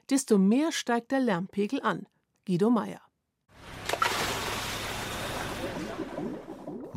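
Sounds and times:
speech: 0:00.1 - 0:03.1
scuba diver breathing bubbles underwater in the sea: 0:04.6 - 0:06.9.

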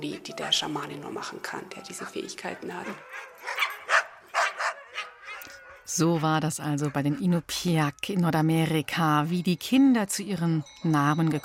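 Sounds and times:
speech: 0:00.0 - 0:03.6, 0:05.9 - 0:11.4
several dogs howling and yelping together: 0:01.1 - 0:07.5.

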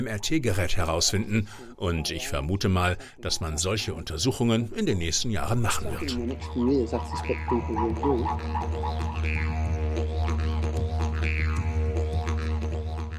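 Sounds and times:
speech: 0:00.0 - 0:11.6
didgeridoo droning on one deep low note: 0:05.7 - 0:13.1.

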